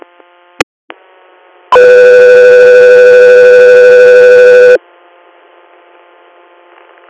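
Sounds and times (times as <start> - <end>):
radio dispatch paging tone alerting an air medical crew: 1.7 - 4.8.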